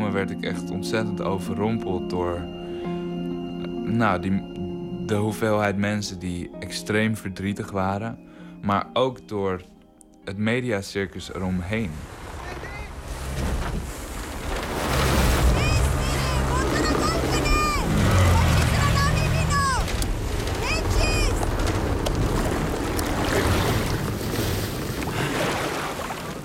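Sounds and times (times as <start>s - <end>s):
speech: 0.1s - 3.0s, 3.9s - 9.7s, 10.3s - 12.2s
rough sea water splashing around a small boat: 11.6s - 26.4s
deep rumble: 11.7s - 25.0s
roaring wind at sea: 11.9s - 25.8s
adults shouting: 15.4s - 21.4s
girl wailing: 15.7s - 19.9s.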